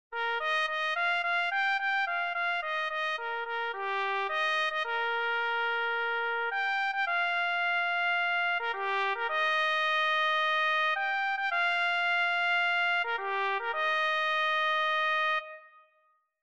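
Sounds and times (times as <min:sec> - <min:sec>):
clarinet: 0:00.1 - 0:16.0.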